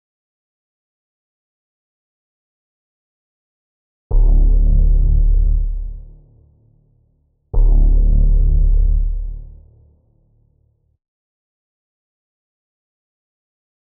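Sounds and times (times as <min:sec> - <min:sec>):
D minor bass: 0:04.1 - 0:10.9.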